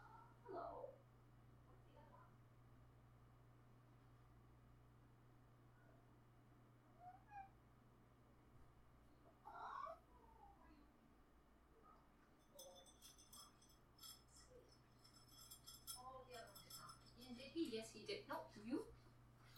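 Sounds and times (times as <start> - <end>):
low steady hum: 0.0 - 19.5
speech: 0.5 - 1.1, 17.7 - 19.0
unhappy cat complaining meow and yowls: 7.0 - 7.6, 9.4 - 10.5
light clinking and rustling: 12.2 - 18.2.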